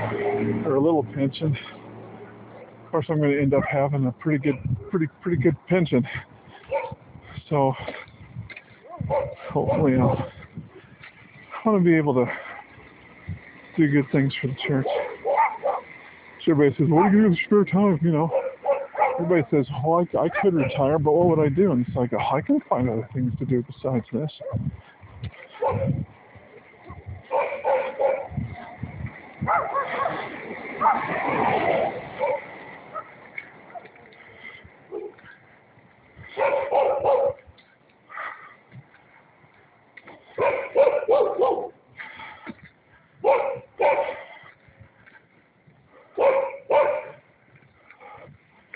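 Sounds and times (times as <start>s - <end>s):
speech: 0.7s - 1.8s, 2.9s - 6.8s, 7.5s - 8.0s, 9.1s - 10.4s, 11.6s - 12.4s, 13.8s - 15.0s, 16.5s - 18.4s, 19.2s - 26.1s
dog barking with yips and whimpery notes: 3.5s - 3.9s, 6.6s - 7.0s, 8.8s - 10.4s, 14.6s - 15.9s, 18.3s - 19.4s, 20.2s - 20.9s, 25.5s - 26.0s, 26.9s - 28.4s, 29.4s - 33.9s, 34.9s - 35.2s, 36.3s - 37.4s, 40.4s - 41.8s, 43.2s - 44.3s, 46.0s - 47.2s.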